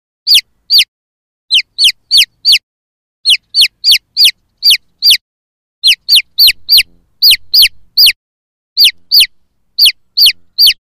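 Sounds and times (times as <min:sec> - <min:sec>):
chickens chirping: 0:00.3 - 0:00.9, 0:01.5 - 0:02.6, 0:03.2 - 0:05.2, 0:05.8 - 0:08.2, 0:08.8 - 0:10.8.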